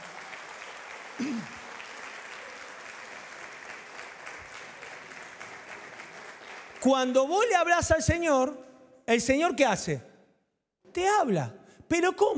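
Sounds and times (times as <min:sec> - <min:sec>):
audience applauding: 0:00.0 - 0:07.4
speech: 0:01.2 - 0:01.6, 0:06.8 - 0:10.1, 0:10.9 - 0:12.3.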